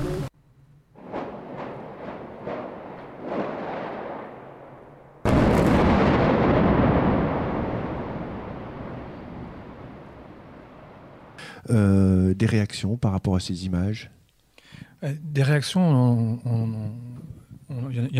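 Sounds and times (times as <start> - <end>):
sharp bangs: 0.9 - 11.4
massive explosion with sustained roaring rumble: 1.0 - 11.4
speech: 11.7 - 14.2, 15.0 - 17.1, 17.7 - 18.1.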